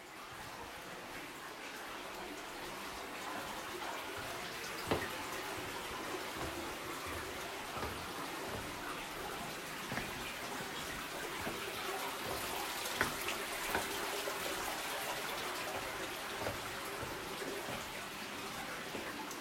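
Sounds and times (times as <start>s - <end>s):
water trickling and splashing from a slow-flowing stream inside a limestone cave: 0.0s - 19.3s.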